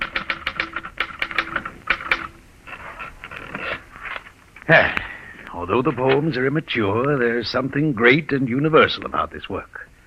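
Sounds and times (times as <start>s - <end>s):
typewriter keys clacking: 0.0s - 2.4s
speech: 4.7s - 9.9s.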